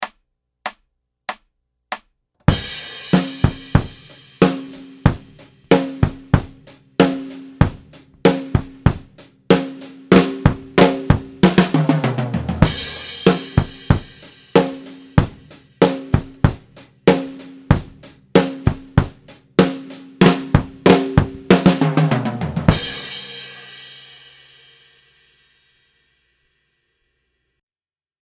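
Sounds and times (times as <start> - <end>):
rock drum fill: 2.5 - 24.6.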